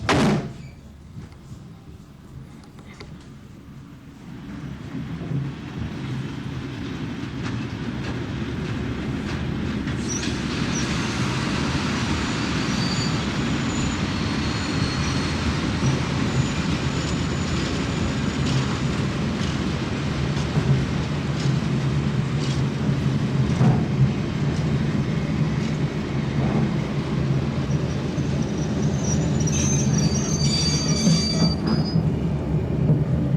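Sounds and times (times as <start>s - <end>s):
train clunk: 0.0s - 1.4s
train rumbling along railway tracks: 0.0s - 33.3s
high squeals from train wheels: 10.0s - 19.4s, 27.6s - 32.2s.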